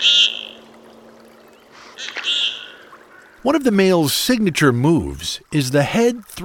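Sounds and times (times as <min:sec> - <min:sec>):
common goldeneye ducks giving courtship calls on icy lake waters: 0:00.0 - 0:00.7, 0:01.8 - 0:03.6
faint steady hum: 0:00.0 - 0:06.4
speech: 0:03.4 - 0:06.4.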